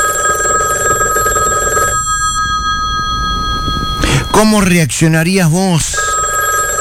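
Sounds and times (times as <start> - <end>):
telephone bell ringing in an electronic trill: 0.0 - 6.7
speech: 4.4 - 6.1.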